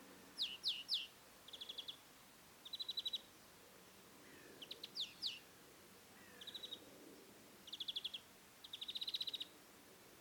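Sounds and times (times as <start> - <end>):
European greenfinch Chloris chloris giving sharp descending chirps: 0.4 - 2.0, 2.6 - 3.3, 4.6 - 5.4, 7.7 - 9.5.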